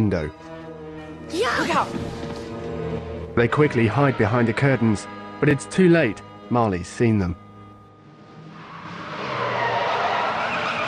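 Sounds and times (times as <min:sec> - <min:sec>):
speech: 0:00.0 - 0:00.6, 0:01.3 - 0:02.3, 0:03.4 - 0:07.4
car speeding around a corner and skidding to a halt in a crescent-shaped driveway: 0:08.1 - 0:10.8.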